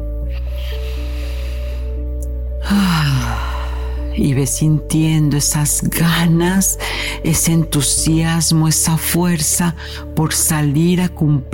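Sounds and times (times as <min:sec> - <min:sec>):
long slow deep breath: 0:00.2 - 0:04.2
speech: 0:04.2 - 0:11.5.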